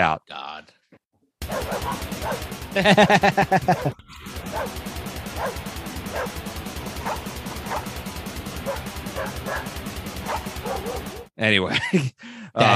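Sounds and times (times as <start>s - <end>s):
speech: 0.0s - 6.5s, 10.7s - 12.7s
dog barking and yelping: 1.4s - 2.5s, 3.6s - 4.8s, 5.4s - 6.4s, 7.0s - 7.9s, 8.6s - 11.3s
loud driving grindcore band: 1.4s - 11.3s
pounding drums: 1.4s - 11.3s
laughter: 2.6s - 4.0s, 11.6s - 12.7s.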